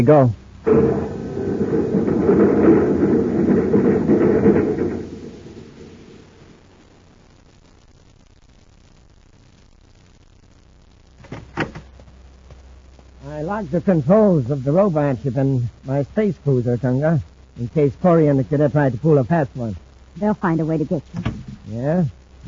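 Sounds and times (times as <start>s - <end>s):
speech: 0.0s - 1.0s, 13.6s - 22.4s
quiet hum: 0.0s - 22.4s
magnetic car with self-contained power unit moving off down a shaft: 0.6s - 6.4s
sharp knocks: 0.7s - 6.4s.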